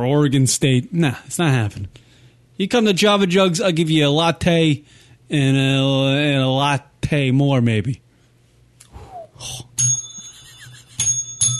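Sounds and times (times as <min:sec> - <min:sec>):
speech: 0:00.0 - 0:08.0, 0:09.4 - 0:09.7
bell ringing: 0:09.8 - 0:11.5.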